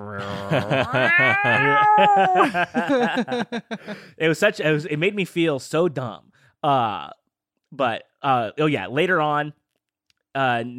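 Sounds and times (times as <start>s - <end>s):
human voice imitating an angry cat yowl: 0.0s - 2.6s
laughter: 0.2s - 4.1s
speech: 0.2s - 9.6s, 10.4s - 10.7s.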